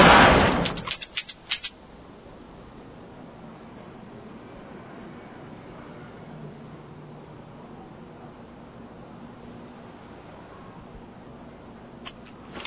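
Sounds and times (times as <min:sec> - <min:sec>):
large handgun gunshots: 0:00.1 - 0:01.7.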